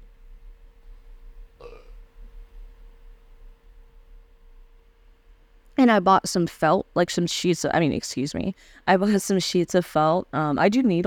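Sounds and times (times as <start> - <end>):
faint steady hum: 0.0 - 11.0
short burp: 1.6 - 2.0
speech: 5.8 - 11.0.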